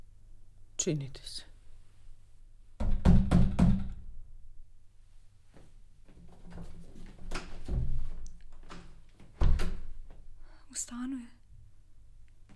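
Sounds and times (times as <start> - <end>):
speech: 0.8 - 1.5, 10.8 - 11.4
knocking on a door: 2.8 - 4.0.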